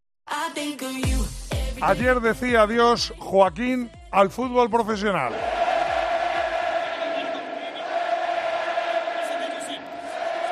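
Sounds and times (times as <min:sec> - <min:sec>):
speech: 0:00.6 - 0:01.1, 0:01.8 - 0:05.5
football stadium crowd roaring, shouting, singing and cheering at a player's farewell: 0:05.3 - 0:10.4.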